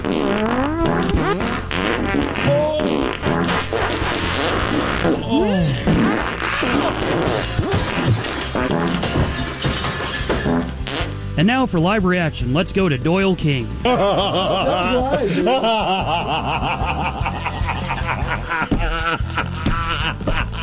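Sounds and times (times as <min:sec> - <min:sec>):
farting montage: 0:00.0 - 0:11.2
speech: 0:11.4 - 0:17.3
laughter: 0:13.8 - 0:20.6.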